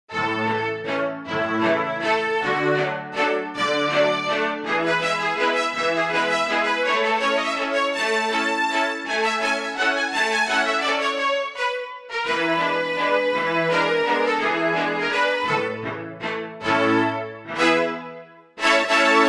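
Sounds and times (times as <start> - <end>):
chamber strings: 0.1 - 19.2.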